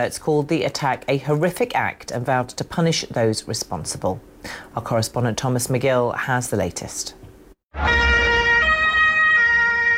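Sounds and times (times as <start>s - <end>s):
speech: 0.0s - 7.2s
police siren with tone stepping between pitches: 7.8s - 9.9s.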